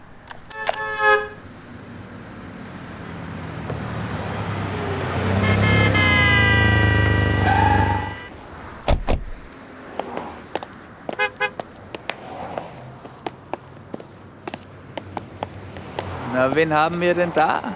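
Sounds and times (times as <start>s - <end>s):
heavy motorway traffic at dawn: 0.0s - 17.7s
short horn toot: 0.5s - 1.6s, 5.2s - 8.4s
vehicle engine roaring up loudly and passing by: 1.9s - 9.5s
thump: 8.8s - 9.5s
speech: 16.4s - 17.7s.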